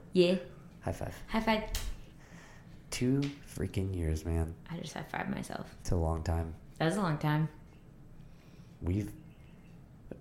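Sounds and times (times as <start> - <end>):
speech: 0.2 - 1.9, 2.9 - 7.6, 8.8 - 9.2
bird chirping at night: 8.8 - 10.2.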